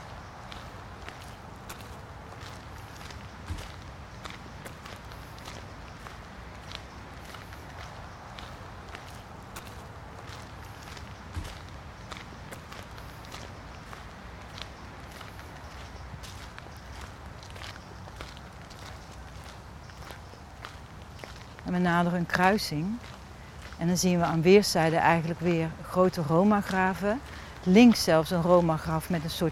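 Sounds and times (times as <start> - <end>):
footsteps crunching along a path at an even walking pace: 0.0 - 29.5
speech: 21.7 - 23.1, 23.8 - 29.5.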